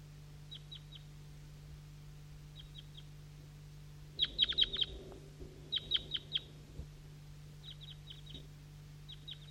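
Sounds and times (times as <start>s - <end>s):
low steady hum: 0.0s - 9.5s
wild birds chirping from a tree: 0.4s - 1.2s, 2.4s - 3.3s, 4.0s - 9.5s.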